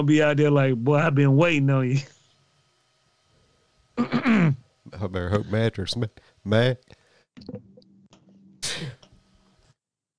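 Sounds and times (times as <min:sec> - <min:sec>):
speech: 0:00.0 - 0:02.2, 0:04.0 - 0:07.7
sneeze: 0:08.6 - 0:09.0.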